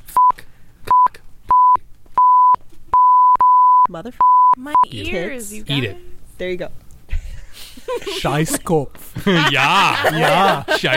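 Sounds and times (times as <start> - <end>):
censor bleeps over swear words: 0.1 - 5.1
speech: 3.9 - 6.8, 7.9 - 10.9
laughter: 7.1 - 10.9.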